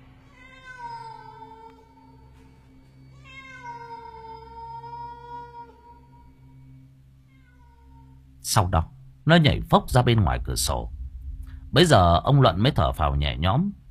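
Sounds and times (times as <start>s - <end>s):
low steady hum: 0.0s - 13.8s
stray cat meowing: 0.3s - 2.2s, 3.1s - 6.6s, 7.2s - 8.2s
speech: 8.5s - 11.0s, 11.7s - 13.8s.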